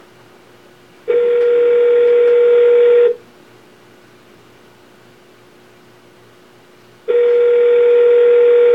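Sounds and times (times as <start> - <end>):
telephone connecting tone, a steady loud electronic hum: 1.1 - 3.2, 7.1 - 8.7.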